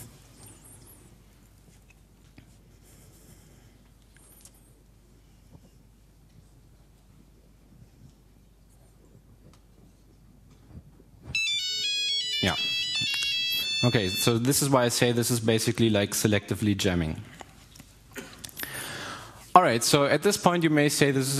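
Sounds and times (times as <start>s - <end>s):
quiet noise: 0.0s - 21.3s
mobile phone ringing with electronic ringtone: 11.4s - 14.5s
speech: 12.4s - 12.7s, 13.8s - 17.4s, 19.6s - 21.3s.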